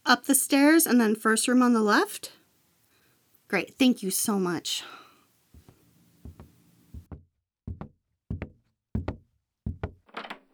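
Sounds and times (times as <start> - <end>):
speech: 0.1 - 2.4, 3.5 - 5.0
firm knocks on a wooden door: 6.3 - 10.5.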